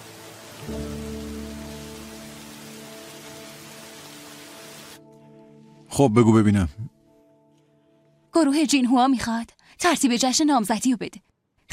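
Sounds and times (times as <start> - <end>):
steady rain falling: 0.0 - 5.0
speech: 6.0 - 7.0, 8.4 - 11.7.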